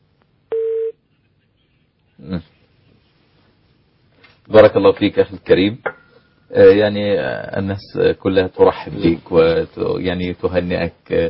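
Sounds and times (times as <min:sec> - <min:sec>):
phone call disconnect tone beep: 0:00.5 - 0:00.9
speech: 0:04.5 - 0:05.9, 0:06.5 - 0:11.2.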